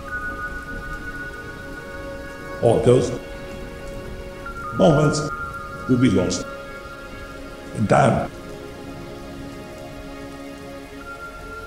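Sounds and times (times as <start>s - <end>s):
faint sustained musical drone: 0.0s - 11.6s
rain falling on a surface: 0.0s - 11.6s
speech: 2.6s - 3.3s, 4.8s - 6.6s, 7.8s - 8.4s.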